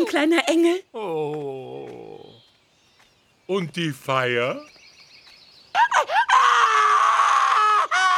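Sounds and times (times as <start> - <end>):
speech: 0.0 - 1.6, 3.5 - 4.8
baby screaming loudly: 5.8 - 8.1.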